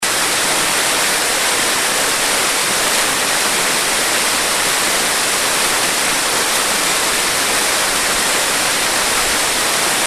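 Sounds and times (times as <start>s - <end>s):
waterfall at Burr Falls: 0.0s - 10.0s.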